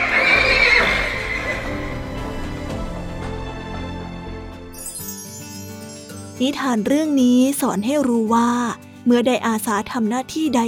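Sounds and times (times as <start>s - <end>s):
horse whinnying loudly: 0.0s - 2.2s
speech: 6.4s - 10.6s.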